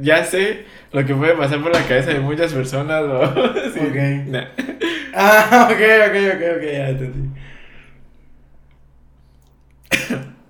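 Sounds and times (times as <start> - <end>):
speech: 0.0 - 7.5
quiet hum: 0.0 - 10.4
laughter: 3.0 - 6.0
person sneezing: 9.9 - 10.4.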